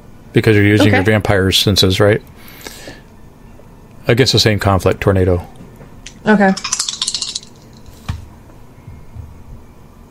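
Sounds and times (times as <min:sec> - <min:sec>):
speech: 0:00.3 - 0:02.6, 0:04.1 - 0:05.6, 0:06.2 - 0:06.8
dice rattling and clattering across a hard table: 0:06.6 - 0:08.0.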